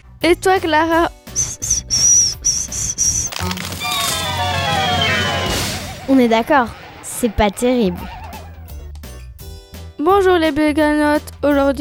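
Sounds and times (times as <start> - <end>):
speech: 0.2 - 1.2, 6.1 - 8.2, 10.0 - 11.8
failed whistling attempts by teenagers: 1.3 - 8.9.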